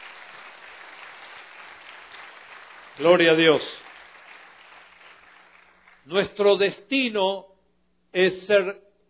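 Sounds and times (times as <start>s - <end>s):
audience applauding with many hands clapping: 0.0s - 6.1s
speech: 3.0s - 3.8s, 6.1s - 7.5s, 8.1s - 8.8s.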